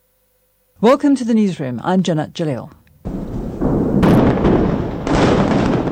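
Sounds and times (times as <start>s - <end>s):
speech: 0.8s - 2.8s
crackling debris from demolition explosion: 3.1s - 5.9s
large demolition explosion of underground tunnels: 3.1s - 5.9s.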